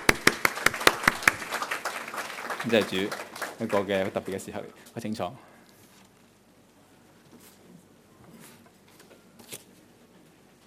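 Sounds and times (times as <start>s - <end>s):
church congregation applauding after a blessing of married couples: 0.0s - 4.7s
speech: 2.6s - 5.5s.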